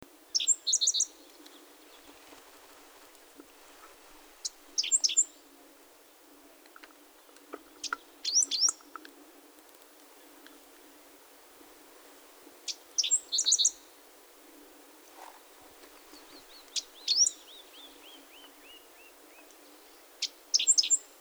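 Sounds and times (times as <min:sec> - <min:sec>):
five-striped sparrow singing: 0:00.3 - 0:02.2, 0:04.4 - 0:05.4, 0:07.8 - 0:08.9, 0:12.7 - 0:13.9, 0:16.0 - 0:21.1.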